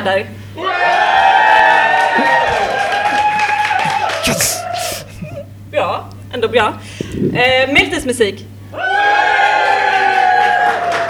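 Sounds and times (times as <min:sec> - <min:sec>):
speech: 0:00.0 - 0:01.1, 0:04.2 - 0:04.9, 0:06.4 - 0:08.5
audience cheering and shouting to vote for medieval clothes: 0:00.6 - 0:05.1, 0:08.7 - 0:11.0.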